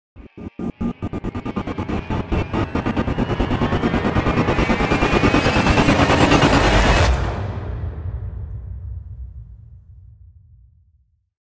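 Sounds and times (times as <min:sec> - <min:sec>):
black burst rise: 0:00.2 - 0:08.4.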